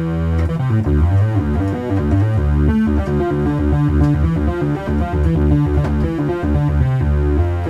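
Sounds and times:
sawtooth wave on monophonic synth with reverb: 0:00.0 - 0:07.6.

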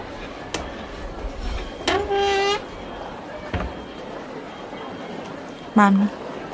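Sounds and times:
train window squealing as it grinds along its frame: 0:01.8 - 0:02.8
speech: 0:05.8 - 0:06.2.

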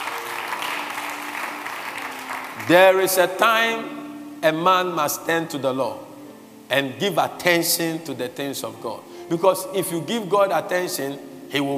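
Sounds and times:
church congregation applause during a worship service: 0:00.0 - 0:03.6
speech: 0:02.6 - 0:06.0, 0:06.7 - 0:11.7.

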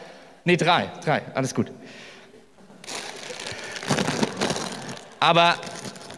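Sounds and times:
speech: 0:00.4 - 0:02.1, 0:05.2 - 0:06.0
tortilla chips being crushed and shaken in a glass jar: 0:02.8 - 0:06.1.

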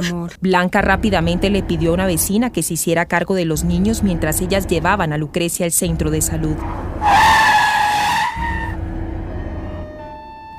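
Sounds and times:
speech: 0:00.0 - 0:07.3
low car engine rumble: 0:00.5 - 0:10.5
car braking hard with tires squealing: 0:06.6 - 0:10.5.

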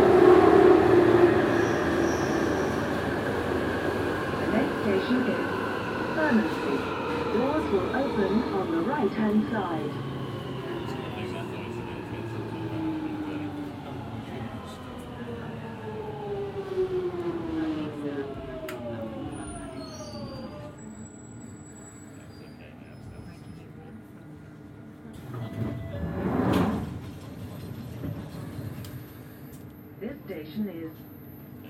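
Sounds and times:
Tube train rumble: 0:00.0 - 0:20.9, 0:24.8 - 0:29.7.

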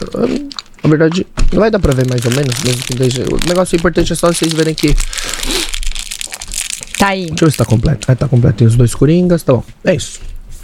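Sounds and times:
plastic wrapping torn off a deck of playing cards: 0:00.0 - 0:00.8, 0:01.5 - 0:08.3
speech: 0:00.0 - 0:05.7, 0:07.0 - 0:10.3.

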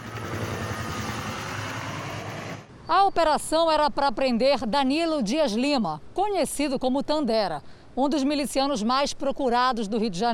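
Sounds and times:
helicopter flying overhead: 0:00.0 - 0:02.7
speech: 0:02.9 - 0:10.3.

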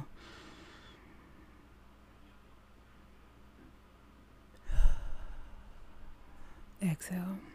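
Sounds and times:
deep breath in and out during a guided meditation chant: 0:00.0 - 0:01.6, 0:04.6 - 0:06.8.

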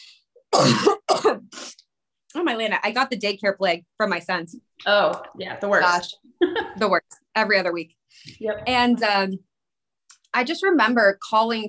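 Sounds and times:
harsh raspy coughs: 0:00.4 - 0:01.6
speech: 0:00.5 - 0:01.4, 0:02.3 - 0:09.5, 0:10.3 - 0:11.6.

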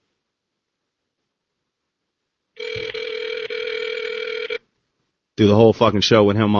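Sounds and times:
cell phone call ring tone on speakerphone: 0:02.6 - 0:04.6
speech: 0:05.4 - 0:06.5.

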